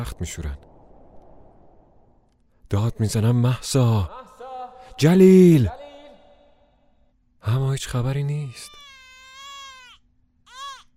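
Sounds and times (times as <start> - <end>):
speech: 0.0 - 0.7, 2.7 - 4.2, 5.0 - 5.8, 7.4 - 8.8
newborn baby crying: 8.4 - 10.9.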